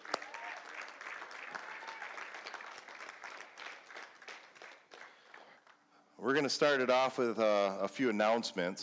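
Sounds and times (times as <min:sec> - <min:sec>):
large group at a church service clapping and applauding: 0:00.0 - 0:05.9
speech: 0:06.2 - 0:08.8.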